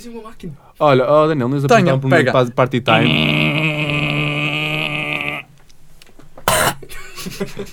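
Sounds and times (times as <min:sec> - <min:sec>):
speech: 0:00.0 - 0:03.6, 0:07.4 - 0:07.7
person hacking and gagging imitating a cat coughing up a hairball: 0:02.9 - 0:05.5, 0:06.5 - 0:06.8
person making a sharp loud cough burst: 0:06.5 - 0:06.9
laughter: 0:06.9 - 0:07.7.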